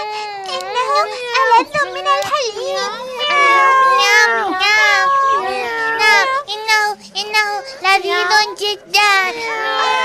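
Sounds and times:
speech: 1.0s - 5.2s, 6.5s - 10.0s
high-pitched kittens meowing: 2.9s - 6.2s.

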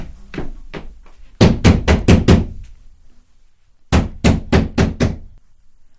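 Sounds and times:
knocking on a door: 0.8s - 2.6s, 3.9s - 5.2s.

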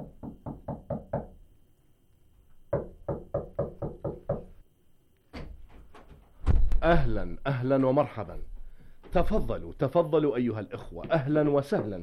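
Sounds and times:
firm knocking on the wooden door of a house: 0.0s - 1.4s, 2.7s - 4.5s, 11.0s - 12.0s
louder sharper thuds: 5.4s - 6.9s
speech: 6.8s - 8.5s, 9.2s - 12.0s.

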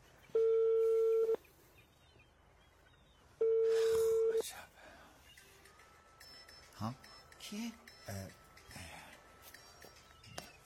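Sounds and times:
phone ringback tone: 0.4s - 1.4s, 3.4s - 4.4s
speech: 6.8s - 8.4s.

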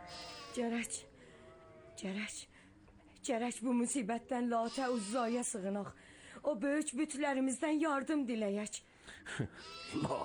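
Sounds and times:
lambs bleating: 0.0s - 0.9s, 4.6s - 5.6s, 9.6s - 10.2s
low steady background: 0.0s - 10.2s
speech: 0.6s - 1.1s, 2.0s - 2.6s, 3.2s - 10.2s.

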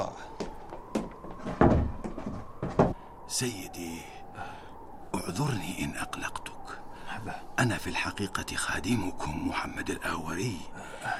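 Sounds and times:
wooden knocks and rattles of a settling door: 0.4s - 3.0s
heavy door creaking and thudding shut: 1.4s - 3.0s
speech: 3.3s - 4.6s, 5.3s - 6.5s, 7.2s - 11.1s.

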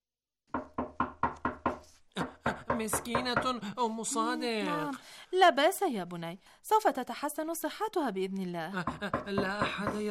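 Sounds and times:
firm knocking on the wooden door of a neighbour's home: 0.5s - 3.6s, 8.8s - 10.0s
speech: 2.2s - 10.0s.

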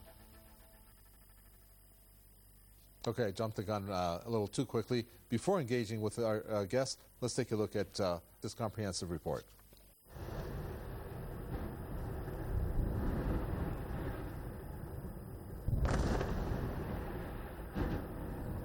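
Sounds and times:
speech: 3.0s - 9.6s
air and artillery strike bombardment explosions in Gaza: 10.2s - 18.6s.

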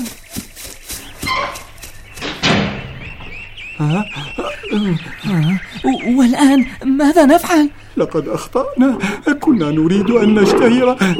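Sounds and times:
voices chattering and calling out in high animated tones: 0.0s - 11.1s
cage door slamming shut: 2.2s - 3.3s
speech: 3.8s - 11.1s.

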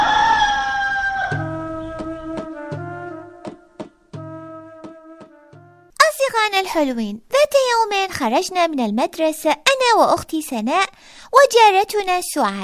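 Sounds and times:
rooster crowing: 0.0s - 2.4s
speech: 6.4s - 12.6s.

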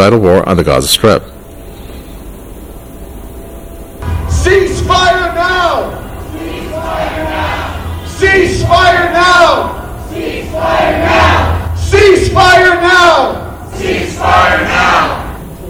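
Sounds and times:
speech: 0.0s - 1.4s
large crowd of protesters shouting slogans: 4.0s - 15.5s.

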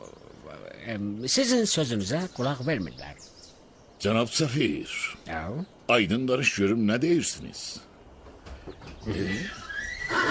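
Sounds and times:
speech: 0.6s - 3.4s, 4.0s - 7.9s, 9.0s - 9.6s
Iranian horse neighing: 9.0s - 10.2s.

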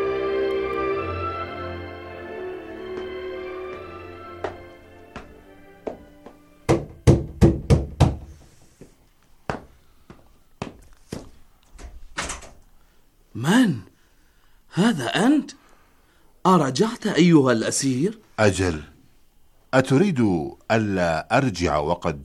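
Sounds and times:
low noise: 0.0s - 22.2s
knocking on a wooden door: 6.7s - 8.4s
speech: 13.4s - 13.8s, 14.8s - 15.6s, 16.4s - 18.9s, 19.7s - 22.2s.

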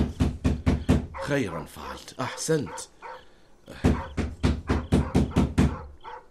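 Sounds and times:
knocking on a wooden door: 0.0s - 1.3s, 3.7s - 5.9s
speech: 1.3s - 2.9s, 3.7s - 4.1s.

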